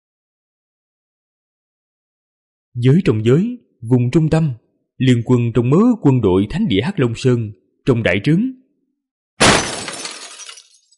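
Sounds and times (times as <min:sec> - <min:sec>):
speech: 0:02.8 - 0:08.6
teacup hurled onto the ground inside a tent smashing: 0:09.4 - 0:10.9.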